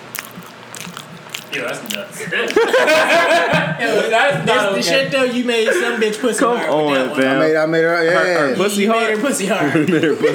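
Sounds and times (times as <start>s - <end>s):
crunchy mouth sounds against a microphone: 0.0s - 3.4s
speech: 1.5s - 10.3s
laughter: 2.2s - 4.4s, 5.5s - 7.2s, 9.4s - 10.3s.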